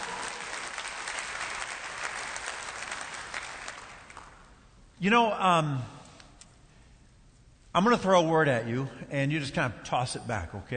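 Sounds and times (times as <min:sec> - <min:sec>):
audience applauding: 0:00.0 - 0:04.6
speech: 0:05.0 - 0:06.0, 0:07.7 - 0:10.7.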